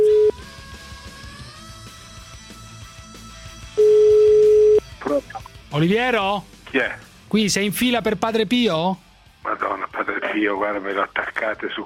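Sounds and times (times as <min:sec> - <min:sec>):
loud steady electronic phone ring tone: 0:00.0 - 0:00.3, 0:03.8 - 0:04.8
speech: 0:05.8 - 0:09.0, 0:10.4 - 0:11.8.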